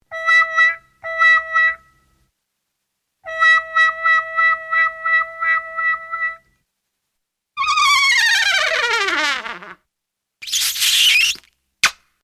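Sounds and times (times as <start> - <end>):
trumpet: 0.0 - 2.1, 3.2 - 6.6, 7.6 - 9.8.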